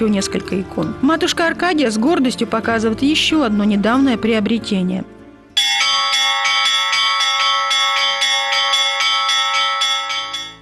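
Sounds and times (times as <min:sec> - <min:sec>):
speech: 0:00.0 - 0:05.2
church bells ringing: 0:05.6 - 0:10.6.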